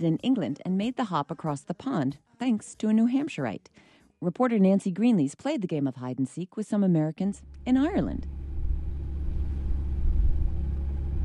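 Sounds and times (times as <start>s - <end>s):
speech: 0.0s - 8.4s
car ferry engine rumbling: 7.4s - 11.2s.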